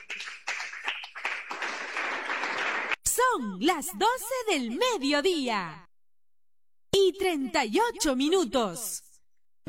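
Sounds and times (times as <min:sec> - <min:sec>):
crowd applauding: 0:00.0 - 0:03.0
speech: 0:03.4 - 0:05.9, 0:07.2 - 0:09.0.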